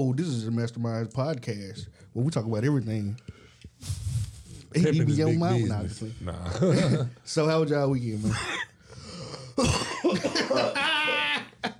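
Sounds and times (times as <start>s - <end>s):
speech: 0.0s - 4.1s, 4.7s - 8.7s, 9.6s - 9.8s
laughter: 6.4s - 7.2s, 9.6s - 11.7s
person coughing into a microphone: 9.6s - 10.4s.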